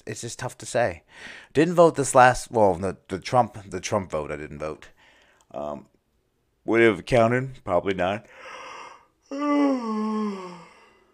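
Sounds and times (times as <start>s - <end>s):
speech: 0.0s - 5.9s, 6.6s - 8.6s, 9.3s - 10.5s
person yawning: 8.8s - 11.1s.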